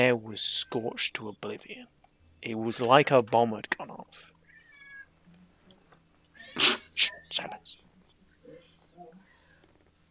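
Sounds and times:
speech: 0.0s - 4.4s, 6.6s - 7.8s
cat meowing: 4.4s - 5.1s.

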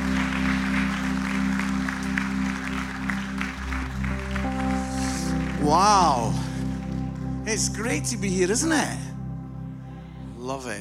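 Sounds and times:
large audience applause: 0.0s - 7.2s
sustained loud musical chords: 0.0s - 10.7s
speech: 5.7s - 6.4s, 7.5s - 9.0s, 10.5s - 10.7s.

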